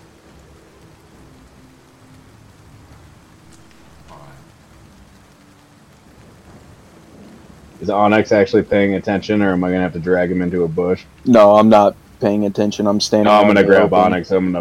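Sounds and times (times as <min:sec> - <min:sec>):
steady rain pouring down: 0:00.0 - 0:14.6
thunder rumble: 0:00.0 - 0:14.6
speech: 0:07.8 - 0:14.6.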